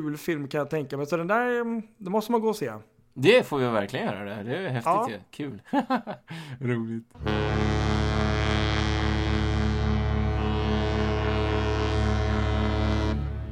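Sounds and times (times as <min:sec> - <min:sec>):
speech: 0:00.0 - 0:07.8
laughter: 0:05.7 - 0:06.3
ship horn blast: 0:07.2 - 0:13.4.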